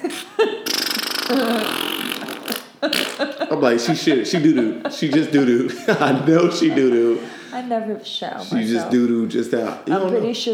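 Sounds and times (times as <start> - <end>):
laughter: 0.0 - 0.7, 1.3 - 7.6
voice making a wet sputtering fart noise with the mouth: 0.0 - 3.5
speech: 1.3 - 1.8, 3.5 - 10.5.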